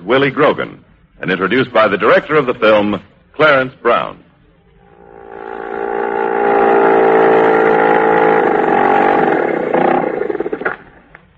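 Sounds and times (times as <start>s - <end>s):
speech: 0.1s - 4.2s
small outboard motor droning and sputtering: 5.0s - 11.1s.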